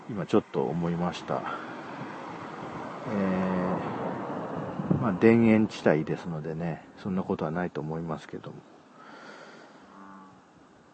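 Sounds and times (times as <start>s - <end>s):
outdoor hiss: 0.0s - 10.9s
speech: 0.1s - 1.7s, 3.1s - 4.0s, 5.0s - 8.8s
large frog croaking with moo-like call: 9.8s - 10.7s.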